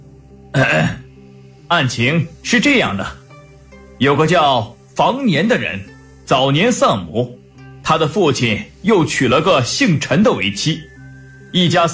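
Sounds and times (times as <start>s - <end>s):
speech: 0.6s - 1.0s, 1.7s - 3.2s, 4.0s - 10.9s, 11.5s - 11.9s
throat clearing: 0.6s - 1.0s.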